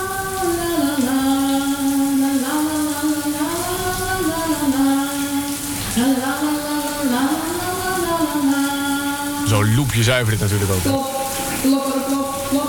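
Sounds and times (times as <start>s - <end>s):
water running from a shower tap: 0.0s - 12.6s
speech: 10.1s - 12.6s.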